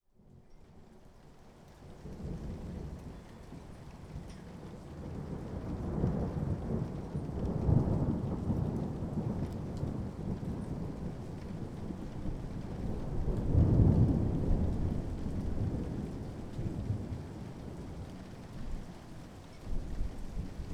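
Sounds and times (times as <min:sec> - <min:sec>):
thunder: 0:02.1 - 0:18.4.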